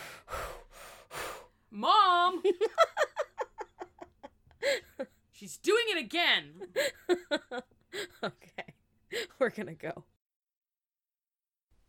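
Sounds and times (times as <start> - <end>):
heavy breathing against the microphone: 0.0 - 1.7
speech: 1.7 - 2.8, 6.0 - 7.7, 9.5 - 10.1.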